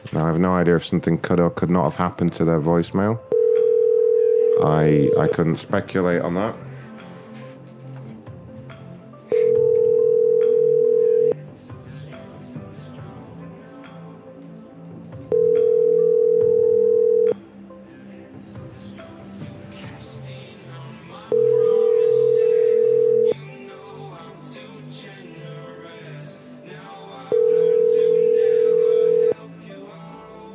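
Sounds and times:
speech: 0:00.1 - 0:03.3, 0:04.6 - 0:06.6
telephone ringback tones of a call to a pizza restaurant: 0:03.3 - 0:05.6, 0:09.3 - 0:11.4, 0:15.3 - 0:17.4, 0:21.3 - 0:23.4, 0:27.3 - 0:29.4.

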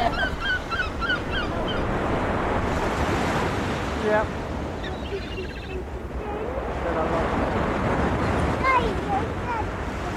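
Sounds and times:
seagull calls: 0:00.0 - 0:02.0, 0:04.8 - 0:06.4
blustery wind: 0:00.0 - 0:10.1
waves breaking on a beach: 0:00.0 - 0:10.1.

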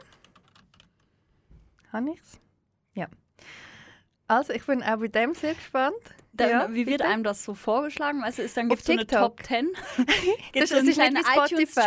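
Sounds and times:
typing on a computer keyboard: 0:00.0 - 0:01.1
speech: 0:01.9 - 0:03.7, 0:04.3 - 0:11.8.

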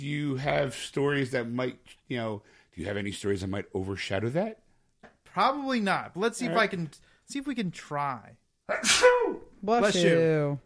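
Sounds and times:
speech: 0:00.0 - 0:04.6, 0:05.3 - 0:10.6
sneeze: 0:08.7 - 0:09.5.

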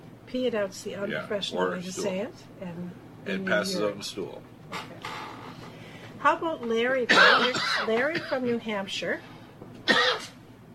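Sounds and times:
speech: 0:00.3 - 0:05.1, 0:06.2 - 0:09.3
person coughing: 0:07.1 - 0:08.4, 0:09.9 - 0:10.4.

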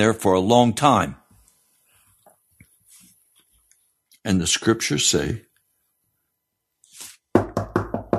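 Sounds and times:
speech: 0:00.0 - 0:01.2, 0:04.2 - 0:05.5
brief soft rustle: 0:01.4 - 0:04.2
firm knocks on a wooden door: 0:07.4 - 0:08.1.

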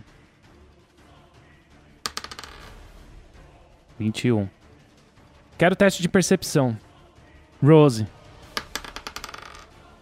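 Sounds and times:
dice clattering on a table in a game: 0:02.0 - 0:02.8, 0:08.5 - 0:09.8
speech: 0:04.0 - 0:04.6, 0:05.6 - 0:06.9, 0:07.6 - 0:08.2.

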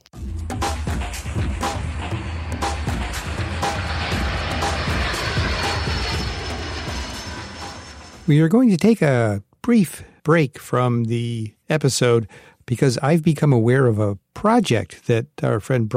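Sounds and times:
propeller airplane engine droning in flight: 0:00.4 - 0:08.4
speech: 0:08.3 - 0:15.9.

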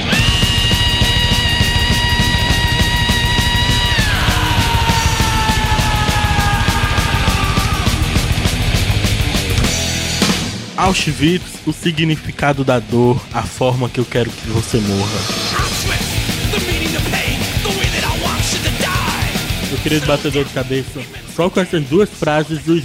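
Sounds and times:
thrash metal vocalist screaming: 0:00.0 - 0:09.0, 0:15.2 - 0:20.7
fast pounding drums: 0:00.0 - 0:22.4
distorted guitars: 0:00.0 - 0:22.8
speech: 0:10.8 - 0:15.6, 0:19.8 - 0:22.8
laughter: 0:16.4 - 0:22.8.

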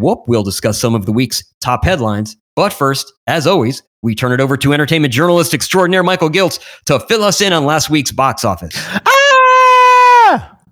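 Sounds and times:
speech: 0:00.0 - 0:09.2, 0:10.3 - 0:10.5
person screaming: 0:08.9 - 0:10.6.

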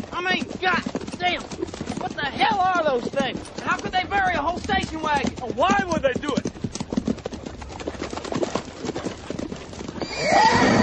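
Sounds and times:
hooves clopping on hard ground: 0:00.0 - 0:10.8
speech: 0:00.2 - 0:01.6, 0:02.2 - 0:06.6
horse neighing: 0:09.9 - 0:10.8.

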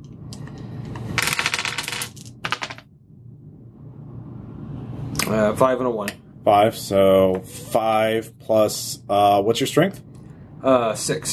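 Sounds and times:
low room hum: 0:00.0 - 0:11.3
dice clattering and rattling across a hard surface: 0:01.1 - 0:02.8
speech: 0:05.2 - 0:11.3.

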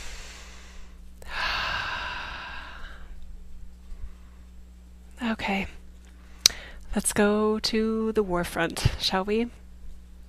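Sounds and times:
deep breath in drawn slowly with a soft airy hiss: 0:00.0 - 0:03.1
steady low electrical hum: 0:00.0 - 0:10.2
speech: 0:06.9 - 0:09.6.

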